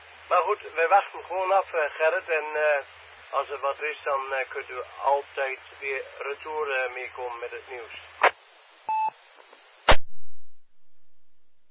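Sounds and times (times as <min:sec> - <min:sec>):
speech: 0:00.3 - 0:08.3
short electronic phone beep: 0:08.9 - 0:09.1.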